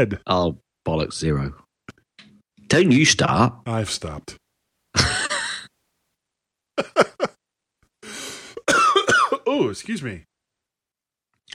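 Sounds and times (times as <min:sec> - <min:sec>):
speech: 0:00.0 - 0:01.6, 0:02.7 - 0:04.4, 0:06.8 - 0:07.3, 0:09.6 - 0:10.3
harsh throaty coughing: 0:05.0 - 0:05.7, 0:06.8 - 0:07.4, 0:08.2 - 0:09.6.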